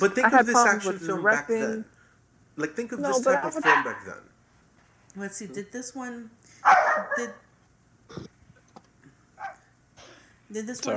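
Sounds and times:
speech: 0.0 - 2.0, 2.6 - 4.3, 5.2 - 7.4, 10.5 - 10.9
dog barking: 3.6 - 4.1, 6.6 - 7.5, 9.4 - 9.7.

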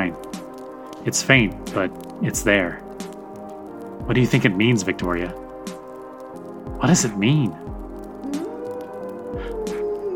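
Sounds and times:
speech: 1.0 - 2.8, 4.0 - 5.4, 6.8 - 7.7
wolves howling outside the door: 8.0 - 10.1.

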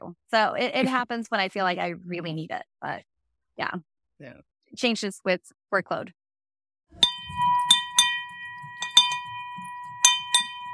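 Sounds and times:
speech: 0.1 - 6.2
small handbell money bell rung in celebration: 7.0 - 10.7.

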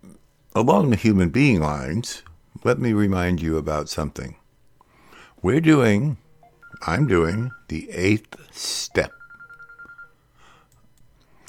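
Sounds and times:
speech: 0.6 - 4.4, 5.4 - 6.2, 6.8 - 9.2
phone electronic ring of soft pulsed beeps: 6.3 - 8.1, 8.8 - 10.2.

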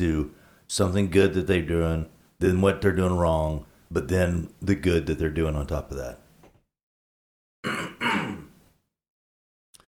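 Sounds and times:
speech: 0.0 - 6.2
person coughing harshly: 7.6 - 8.6.

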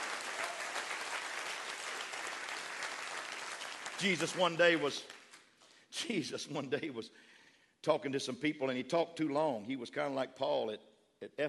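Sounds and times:
congregation clapping hands: 0.0 - 5.4
speech: 4.0 - 5.2, 5.9 - 11.4.

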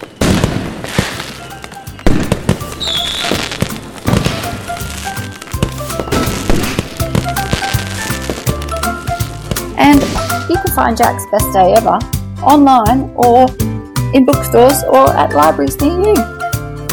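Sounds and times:
whistling rockets: 0.0 - 9.3
fireworks booming and crackling: 0.0 - 11.1
speech: 10.8 - 16.4.

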